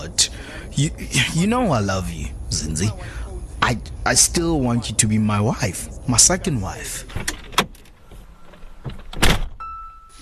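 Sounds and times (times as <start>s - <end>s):
speech: 0.0s - 7.4s
car door unlatching and swinging open with mechanical clunks: 7.0s - 9.6s.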